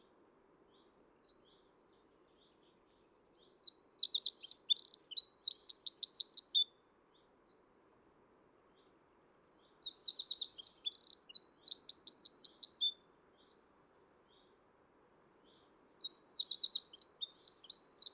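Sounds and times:
Eurasian wren Troglodytes troglodytes singing: 0:03.2 - 0:06.7, 0:09.3 - 0:13.6, 0:15.5 - 0:18.1.

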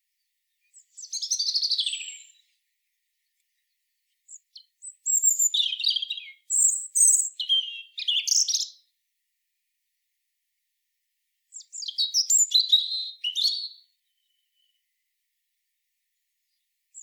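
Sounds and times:
European robin Erithacus rubecula singing: 0:00.2 - 0:08.9, 0:11.5 - 0:14.9, 0:16.4 - 0:17.0.

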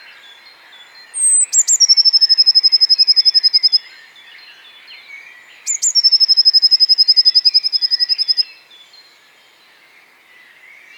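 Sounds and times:
other birds twittering softly: 0:00.0 - 0:10.9
Eurasian Blue Tit song, Cyanistes caeruleus, whistle and rapid trill: 0:01.1 - 0:03.9, 0:05.6 - 0:08.6.

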